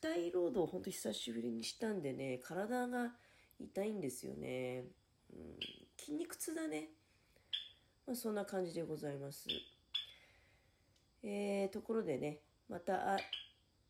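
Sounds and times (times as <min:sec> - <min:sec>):
speech: 0:00.0 - 0:07.0, 0:08.0 - 0:09.8, 0:11.2 - 0:13.4
Java sparrow chirping: 0:05.6 - 0:05.9, 0:07.5 - 0:07.8, 0:09.4 - 0:10.2, 0:13.2 - 0:13.6.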